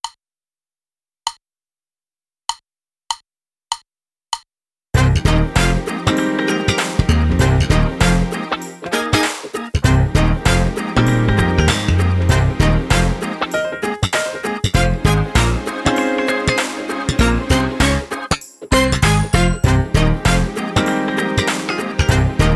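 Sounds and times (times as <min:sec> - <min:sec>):
drumless groove: 0:05.0 - 0:22.5.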